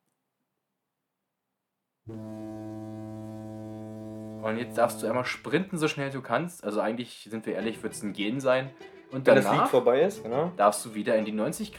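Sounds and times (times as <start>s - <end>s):
speech: 2.1s - 2.5s, 4.4s - 11.7s
loud sustained deep droning foghorn blast signalling a workout sprint start: 2.1s - 6.2s.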